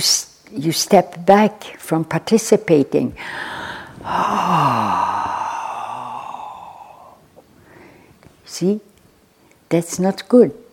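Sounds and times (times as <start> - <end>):
speech: 0.0 - 5.1, 8.5 - 8.9, 9.7 - 10.6
person yawning with a voiced sighing exhale: 3.6 - 7.4.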